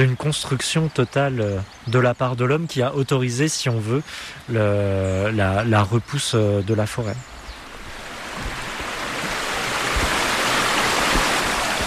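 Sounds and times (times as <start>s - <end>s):
speech: 0.0s - 7.3s
river water rushing under a bridge: 7.3s - 11.8s.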